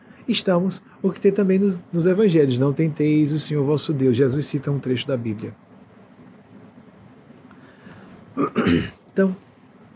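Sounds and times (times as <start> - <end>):
speech: 0.3 - 5.6, 9.2 - 9.4
person with chronic respiratory illness clearing throat: 8.4 - 9.0.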